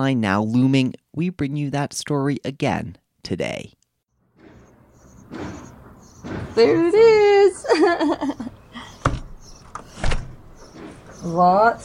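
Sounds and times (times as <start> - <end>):
speech: 0.0 - 3.8, 6.2 - 8.6, 11.2 - 11.8
solid wood house front door thudding as it swings: 4.4 - 7.4, 9.0 - 11.1
laughter: 7.4 - 9.0.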